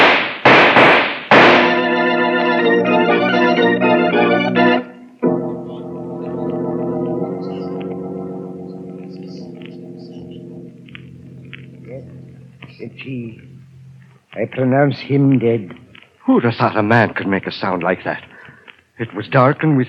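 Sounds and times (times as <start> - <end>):
gunshots fired in the dark: 0.0 - 2.2
dramatic music with sustained layered tones: 1.3 - 14.0
speech: 14.4 - 18.3, 19.0 - 19.8.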